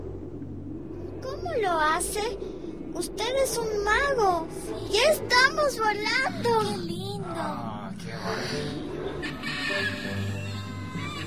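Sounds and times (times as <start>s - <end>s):
steady low hum: 0.0s - 11.2s
speech: 1.4s - 10.2s
birds calling as a balloon rises: 8.2s - 11.2s.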